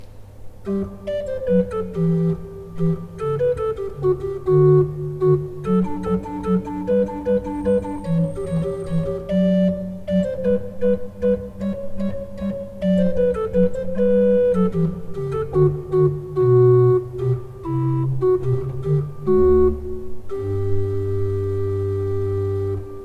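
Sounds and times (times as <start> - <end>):
pipe organ: 0.6 - 23.0.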